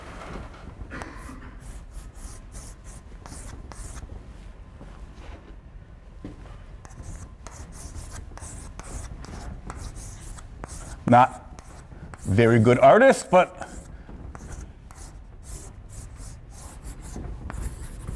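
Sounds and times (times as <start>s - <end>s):
marker or chalk scratching across a board drawing a train: 1.2s - 4.1s, 6.8s - 18.1s
speech: 11.1s - 11.4s, 12.3s - 13.6s.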